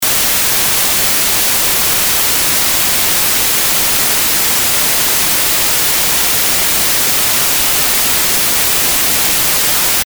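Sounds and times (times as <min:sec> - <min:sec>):
stereo mono white noise: 0:00.0 - 0:10.0.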